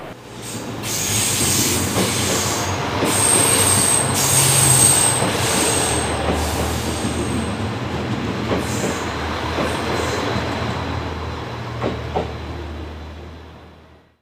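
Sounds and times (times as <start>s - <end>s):
thin high squeal of departing limited express train: 0.0s - 7.4s
HC85 series limited express train wheels rumbling on rails: 0.0s - 13.9s
limited express train wheels clacking: 0.6s - 10.8s, 11.7s - 12.4s.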